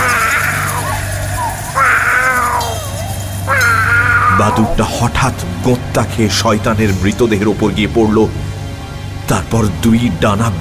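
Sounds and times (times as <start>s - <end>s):
black cat meowing: 0.0s - 4.8s
steady low drone: 0.0s - 10.5s
speech: 4.4s - 8.5s, 9.3s - 10.5s.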